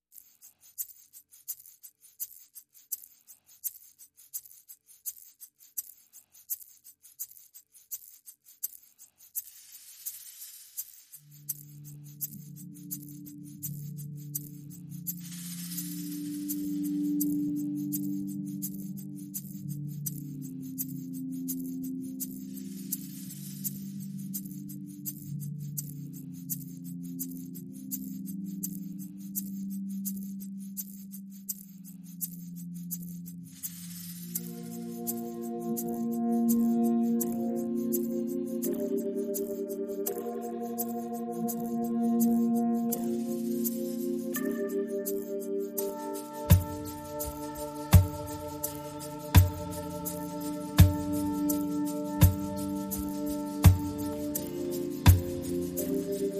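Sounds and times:
percussion: 0.0s - 56.3s
synth pads: 11.2s - 29.4s, 32.6s - 56.3s.

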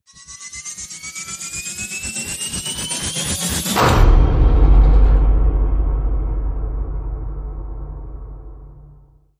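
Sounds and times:
rise to hit missile launch: 3.7s - 9.0s.

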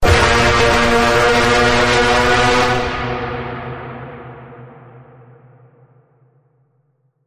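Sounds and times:
full pitch bend on A sharp: 0.0s - 4.6s.

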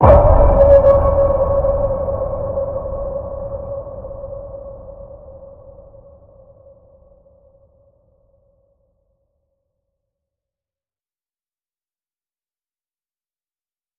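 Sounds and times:
deep underwater ping in C sharp: 0.0s - 5.9s.

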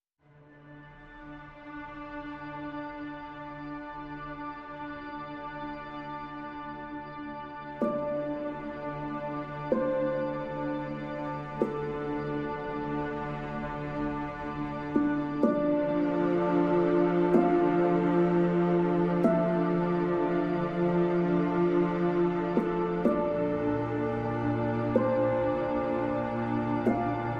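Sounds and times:
strings: 0.2s - 27.3s
lead piano: 7.7s - 27.3s.

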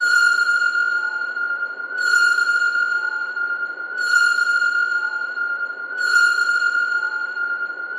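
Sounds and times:
underwater sonar pings: 0.0s - 7.9s.

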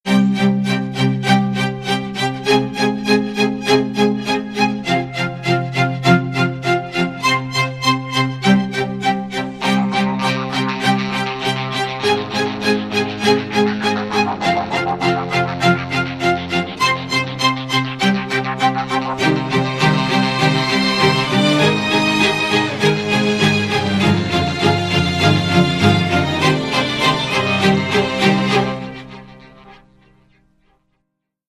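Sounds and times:
string instruments playing: 0.1s - 30.2s.

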